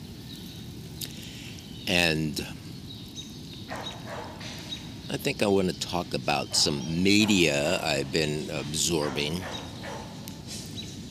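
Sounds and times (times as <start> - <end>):
low steady outdoor rumble: 0.0 - 11.0
speech: 1.9 - 2.6, 5.1 - 9.7
faint dog barks in a park: 3.7 - 4.5, 6.5 - 8.0, 8.9 - 10.5.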